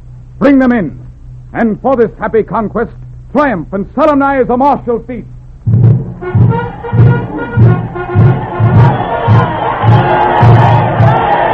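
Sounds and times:
speech: 0.4s - 5.4s
steady pulsing rhythm like chanting or stamping: 5.7s - 11.5s
large crowd of spectators roaring and shouting approval: 6.2s - 11.5s.

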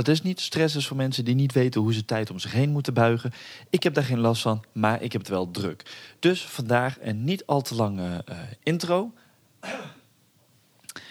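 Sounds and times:
speech: 0.0s - 10.0s
cough: 9.6s - 10.1s.

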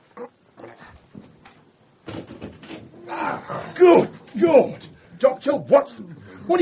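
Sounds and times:
elbows thumping on a closet door: 2.0s - 3.0s
speech: 3.5s - 6.5s.

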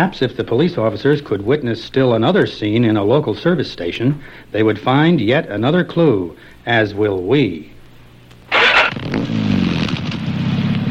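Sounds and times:
speech: 0.0s - 7.7s
car engine starter whir: 8.5s - 10.8s.

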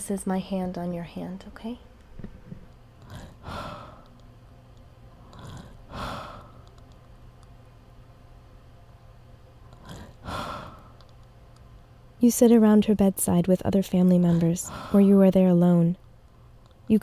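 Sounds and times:
speech: 0.0s - 1.9s, 12.2s - 16.0s
faint steady room hum: 0.0s - 17.0s
elderly woman's slow heavy breathing: 3.2s - 4.1s, 5.2s - 6.7s, 9.9s - 11.1s, 14.4s - 15.2s.

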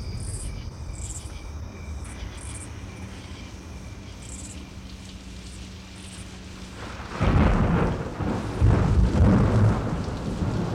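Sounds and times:
steady hiss of falling rain at night: 2.6s - 10.7s
low heavy thunder rolling at night: 6.8s - 10.7s.

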